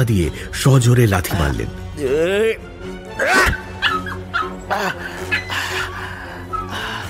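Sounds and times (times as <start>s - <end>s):
speech: 0.0s - 3.5s
small white Spitz dog barking and yelping as it charges: 3.5s - 4.7s.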